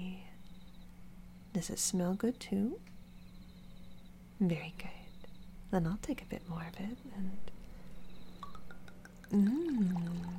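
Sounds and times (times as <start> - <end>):
low steady hum: 0.0 - 10.3
speech: 1.6 - 2.9, 4.4 - 5.0, 5.7 - 7.6, 9.3 - 10.3
faint drips: 8.4 - 10.3
wine being poured: 8.4 - 10.3.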